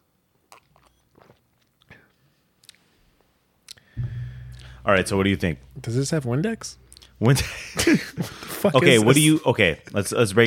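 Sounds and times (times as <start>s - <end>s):
sipping and swallowing of a carbonated drink: 0.5s - 2.2s
louder low thump: 4.0s - 8.0s
speech: 4.8s - 10.4s.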